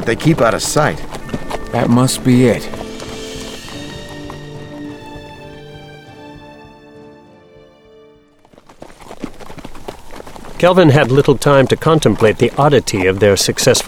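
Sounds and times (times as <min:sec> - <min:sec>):
speech: 0:00.0 - 0:02.8, 0:10.6 - 0:13.8
sustained musical tones: 0:00.0 - 0:08.7
horses walking on a hard surface, hooves clip-clopping: 0:00.0 - 0:13.8.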